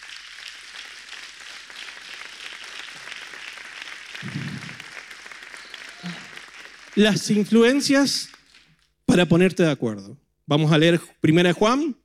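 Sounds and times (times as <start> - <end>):
audience clapping during a sermon: 0.0 - 9.0
speech: 7.0 - 8.4, 9.2 - 12.0.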